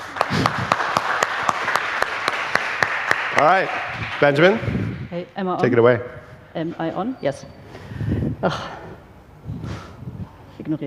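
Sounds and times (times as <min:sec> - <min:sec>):
crowd applauding: 0:00.0 - 0:05.1
speech: 0:03.4 - 0:08.8, 0:10.7 - 0:10.8.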